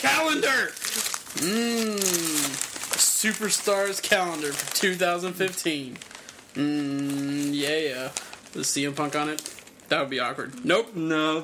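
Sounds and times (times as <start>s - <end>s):
speech: 0.0s - 2.6s, 3.2s - 11.4s
wrapping paper being torn open: 0.0s - 10.8s
person making a long drawn-out vocal sound falling in pitch: 1.4s - 2.6s, 6.6s - 7.6s.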